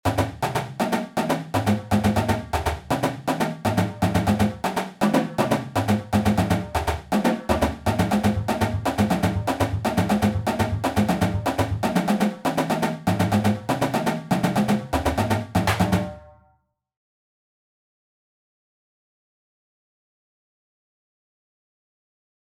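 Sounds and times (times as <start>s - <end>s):
double beat: 0.0s - 16.3s.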